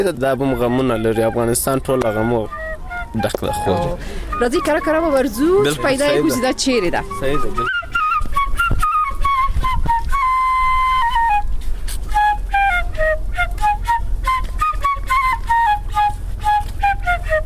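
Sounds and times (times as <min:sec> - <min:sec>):
speech: 0:00.0 - 0:07.7
shpelai flute melody in the Bagh-e Bala area of Kabul: 0:00.0 - 0:17.4.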